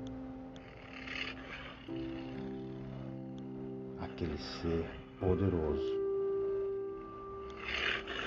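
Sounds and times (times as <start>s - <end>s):
large tiger growling as it approaches: 0.3s - 8.2s
speech: 4.2s - 6.0s.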